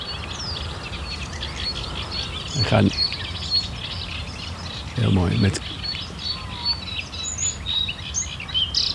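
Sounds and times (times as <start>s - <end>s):
bluethroat singing in varied bright phrases: 0.0s - 8.9s
dense chorus of reed warblers chattering: 1.7s - 3.1s, 4.8s - 6.9s
speech: 2.6s - 3.1s, 5.0s - 5.8s.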